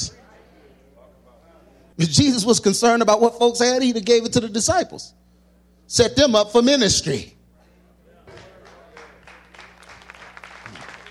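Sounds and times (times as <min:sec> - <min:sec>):
speech: 0:02.0 - 0:05.3, 0:05.9 - 0:07.4
audience clapping: 0:08.3 - 0:11.1.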